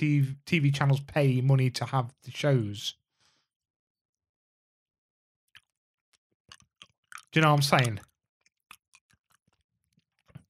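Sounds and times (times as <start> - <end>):
speech: 0.0 - 3.0, 7.3 - 8.1
wet crunchy chewing of food: 5.5 - 10.4.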